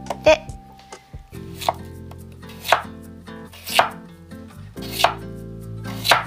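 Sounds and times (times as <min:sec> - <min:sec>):
knife chopping new potatoes in half: 0:02.5 - 0:02.9, 0:03.6 - 0:04.0, 0:04.8 - 0:05.2, 0:05.9 - 0:06.2.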